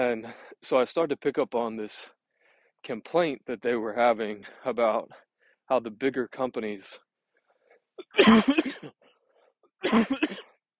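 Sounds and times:
speech: 0:00.0 - 0:02.2, 0:02.8 - 0:07.0, 0:08.0 - 0:09.0, 0:09.8 - 0:10.5
person coughing: 0:08.0 - 0:09.0, 0:09.8 - 0:10.6.

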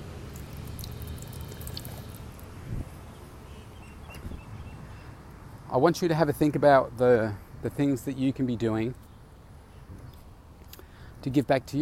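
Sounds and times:
water trickling from an outdoor drinking fountain: 0:00.2 - 0:02.5
faint bird or insect sounds: 0:00.3 - 0:05.9, 0:06.5 - 0:11.8
speech: 0:05.7 - 0:09.0, 0:11.2 - 0:11.8.

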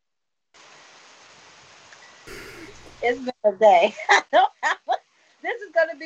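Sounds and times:
rain falling during a party: 0:00.6 - 0:04.0
speech: 0:03.0 - 0:04.8, 0:05.4 - 0:06.0.

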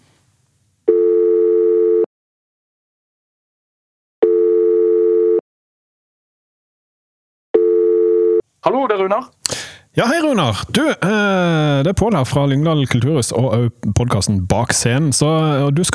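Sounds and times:
telephone ringback tone of an outgoing call: 0:00.9 - 0:02.1, 0:04.2 - 0:05.4, 0:07.6 - 0:08.4
speech: 0:08.6 - 0:15.9.

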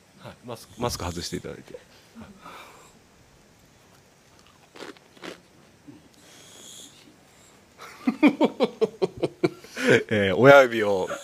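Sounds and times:
speech: 0:00.4 - 0:02.7, 0:08.2 - 0:08.8, 0:10.1 - 0:11.2
person chewing crunchy food while tasting it: 0:03.9 - 0:05.6
laughter: 0:07.8 - 0:10.1.

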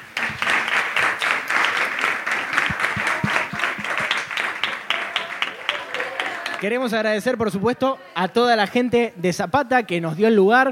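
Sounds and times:
live audience applause: 0:00.0 - 0:06.9
crowd voices: 0:01.8 - 0:09.0
speech: 0:06.6 - 0:10.7.

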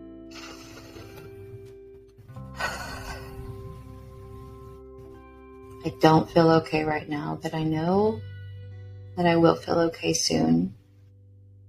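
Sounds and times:
person breathing deeply: 0:00.3 - 0:01.6, 0:02.5 - 0:04.0
steady tonal background: 0:00.3 - 0:10.3
speech: 0:05.8 - 0:08.3, 0:09.2 - 0:10.8.

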